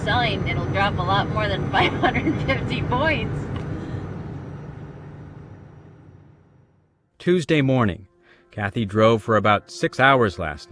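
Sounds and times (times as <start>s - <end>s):
speech: 0.0s - 3.6s, 7.2s - 10.7s
idling truck engines at a truck stop on I-80 west of Des Moines: 0.0s - 6.5s.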